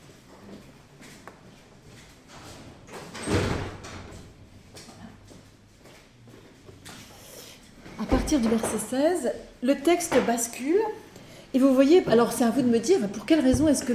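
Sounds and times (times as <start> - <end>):
door swinging shut with a solid thud: 2.9 - 4.4
speech: 8.3 - 13.9.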